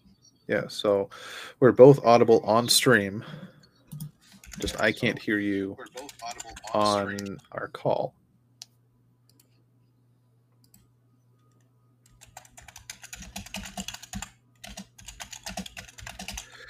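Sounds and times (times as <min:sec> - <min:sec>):
speech: 0:00.5 - 0:03.5, 0:04.6 - 0:08.2
loud typing on a computer keyboard: 0:03.9 - 0:04.8, 0:11.5 - 0:16.6.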